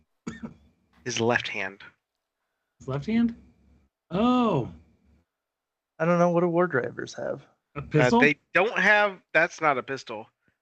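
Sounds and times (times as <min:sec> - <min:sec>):
man coughing: 0:00.3 - 0:00.6
speech: 0:01.0 - 0:02.0, 0:02.8 - 0:03.5, 0:04.1 - 0:04.8, 0:06.0 - 0:10.4.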